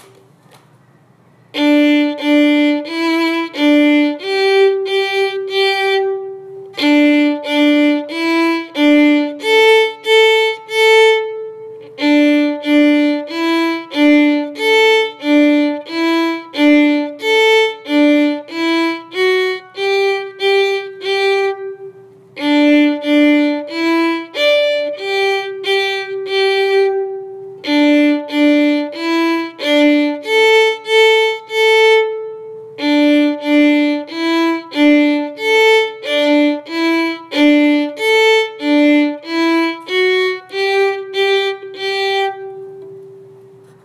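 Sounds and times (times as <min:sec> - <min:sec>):
two-step march music: 0:01.6 - 0:43.5.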